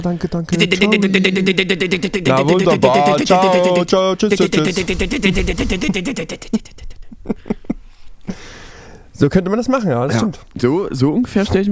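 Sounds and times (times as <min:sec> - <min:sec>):
speech: 0:00.0 - 0:07.6, 0:09.2 - 0:11.7
voice imitating a dot-matrix printer: 0:00.5 - 0:06.5
laughter: 0:00.5 - 0:07.8.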